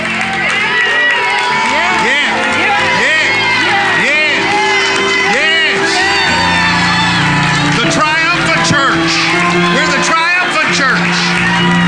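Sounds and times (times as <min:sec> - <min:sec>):
large crowd cheering and shouting: 0:00.0 - 0:11.8.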